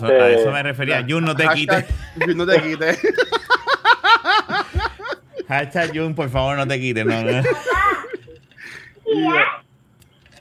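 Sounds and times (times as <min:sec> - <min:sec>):
speech: 0:00.0 - 0:03.5, 0:05.5 - 0:07.8
laughter: 0:01.1 - 0:08.7
young child babbling and giggly chatter: 0:09.1 - 0:09.6.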